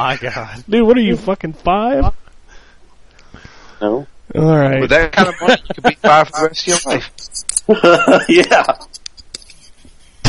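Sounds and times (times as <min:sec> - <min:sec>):
speech: 0:00.0 - 0:02.2, 0:03.8 - 0:08.9
laughter: 0:04.9 - 0:07.0, 0:07.7 - 0:10.2
typing on a computer keyboard: 0:08.4 - 0:09.7.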